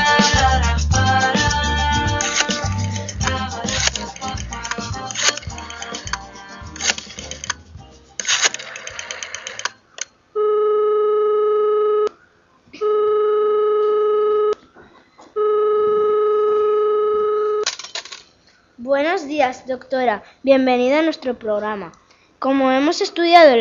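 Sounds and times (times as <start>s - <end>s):
music: 0.0s - 8.5s
telephone ringing for an incoming call: 8.2s - 9.8s, 10.4s - 12.1s, 12.8s - 14.6s, 15.4s - 17.8s
speech: 19.5s - 23.5s.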